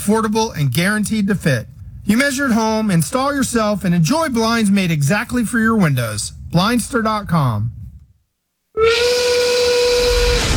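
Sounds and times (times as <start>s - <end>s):
speech: 0.0s - 7.8s, 8.8s - 9.4s
factory steam whistle blowing: 8.8s - 10.5s.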